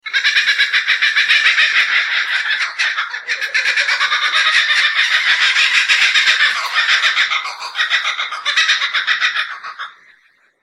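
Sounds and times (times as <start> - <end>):
laughing kookaburra: 0.0 - 10.2.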